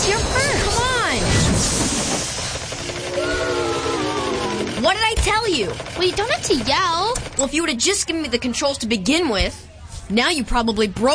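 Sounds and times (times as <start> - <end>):
toy train set giving off a steam-like hiss: 0.1 - 4.6
speech: 5.6 - 11.1.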